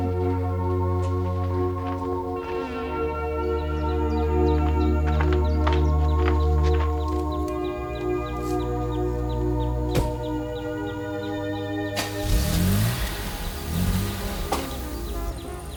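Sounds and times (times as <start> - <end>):
steady tonal background: 0.0 - 15.7
car engine revving as the car pulls away: 11.4 - 15.7.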